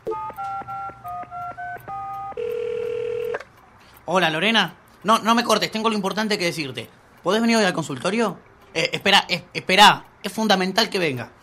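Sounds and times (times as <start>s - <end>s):
telephone keypad tones while dialing: 0.0s - 3.5s
speech: 4.0s - 11.4s.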